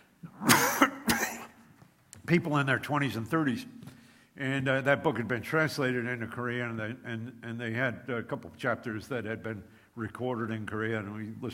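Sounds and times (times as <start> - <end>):
person coughing with a throat-clearing rasp: 0.4 - 1.6
speech: 2.3 - 3.8, 4.4 - 11.5.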